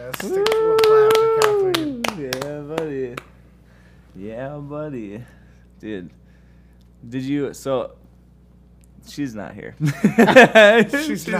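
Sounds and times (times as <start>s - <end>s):
hands clapping in a round of applause: 0.0s - 3.4s
speech: 0.1s - 3.3s, 4.2s - 6.2s, 7.0s - 8.0s, 9.0s - 11.3s
voice holding a long wavering howl-like cheer: 0.2s - 2.2s
laughter: 9.8s - 11.3s.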